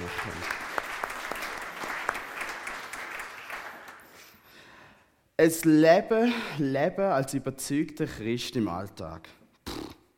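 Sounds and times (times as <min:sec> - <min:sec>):
audience applause: 0:00.0 - 0:04.3
speech: 0:05.4 - 0:09.4.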